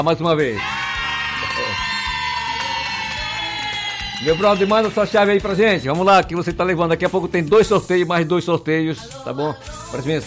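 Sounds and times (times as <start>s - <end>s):
speech: 0.0s - 0.8s, 4.2s - 10.2s
crowd cheering and shouting: 0.4s - 6.1s.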